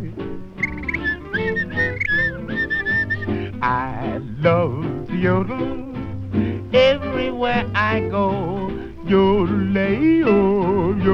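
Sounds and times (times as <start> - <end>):
steady instrumental accompaniment: 0.0 - 8.8
person whistling a bright lilting melody: 0.6 - 3.5
speech: 5.2 - 5.8, 6.7 - 11.1.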